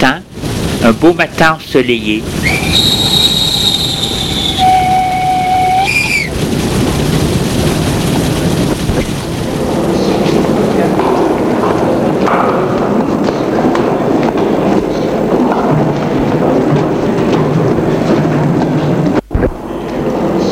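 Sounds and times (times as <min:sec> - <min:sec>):
speech: 0:00.0 - 0:00.2, 0:00.8 - 0:03.1
train rumbling arriving at a station: 0:00.0 - 0:20.4
train squealing arriving at a station: 0:02.4 - 0:06.4.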